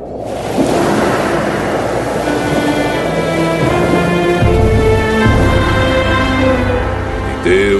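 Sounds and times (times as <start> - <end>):
low sustained musical tones: 0.0 - 7.7
surging sea water: 0.0 - 7.7
very strong east wind roaring: 0.0 - 7.7.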